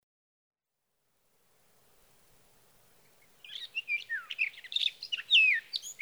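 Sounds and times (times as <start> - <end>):
sage thrasher song: 3.0 - 6.0.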